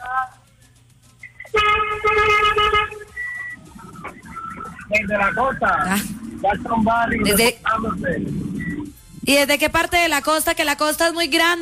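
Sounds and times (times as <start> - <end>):
car horn honking: 1.5 - 3.6
speech: 5.0 - 8.4, 9.3 - 11.5.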